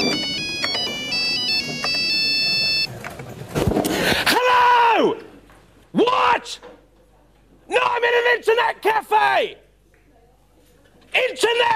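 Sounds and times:
Nokia mobile phone ringtone melody: 0.0s - 2.9s
faint noise: 0.0s - 11.7s
speech: 8.8s - 9.7s.

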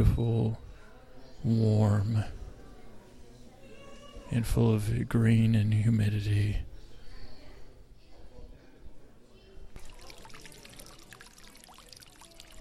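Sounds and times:
speech: 0.0s - 0.7s, 1.4s - 2.4s, 4.3s - 6.7s
faint murmur of crowd voices in a flower conservatory: 0.0s - 12.5s
water splashing in a fountain inside a warm humid flower conservatory in Golden Gate Park: 9.8s - 12.5s.

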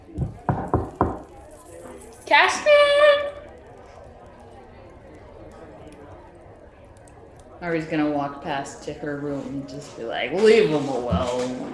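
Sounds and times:
firm knocks on a door: 0.2s - 1.3s
speech: 2.3s - 3.2s, 7.6s - 11.7s.

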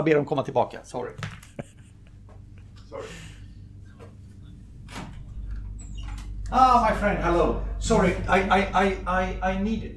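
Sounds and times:
speech: 0.0s - 1.4s, 6.5s - 9.9s
steady low hum: 0.0s - 9.9s
door being pulled open: 4.8s - 6.6s.

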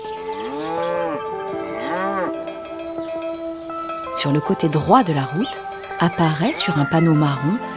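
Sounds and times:
steady ringing cowbell: 0.0s - 7.7s
cow mooing: 0.2s - 2.6s
speech: 4.2s - 7.7s.

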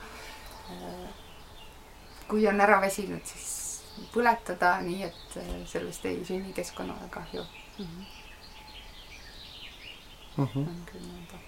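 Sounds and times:
birds chirping and trilling outdoors: 0.0s - 11.4s
speech: 2.3s - 8.2s, 10.4s - 11.4s.

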